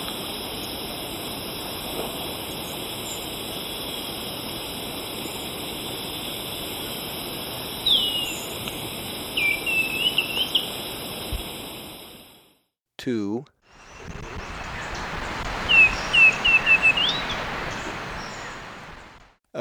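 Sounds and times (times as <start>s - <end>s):
steady insect drone: 0.0s - 12.5s, 13.7s - 19.3s
Black-and-white becard whistling descending notes in Ecuador: 13.8s - 19.2s.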